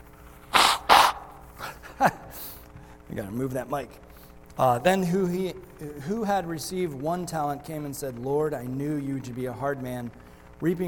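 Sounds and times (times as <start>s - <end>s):
snuffling: 0.5s - 1.4s
man blowing his nose: 0.5s - 1.5s
speech: 2.0s - 2.5s, 3.1s - 10.8s.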